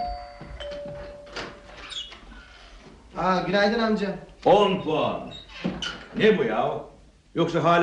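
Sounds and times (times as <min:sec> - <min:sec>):
front door opening with squeaking hinges: 0:00.6 - 0:02.4, 0:04.8 - 0:06.2
speech: 0:03.2 - 0:05.4, 0:06.2 - 0:07.8.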